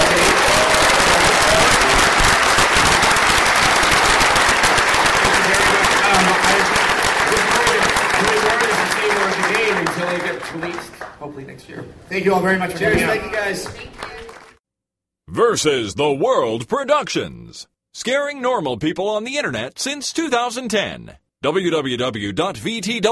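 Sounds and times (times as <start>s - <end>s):
audience applause at the close of a live talk: 0.0s - 11.2s, 13.1s - 14.6s
speech: 12.2s - 13.9s, 15.4s - 23.1s.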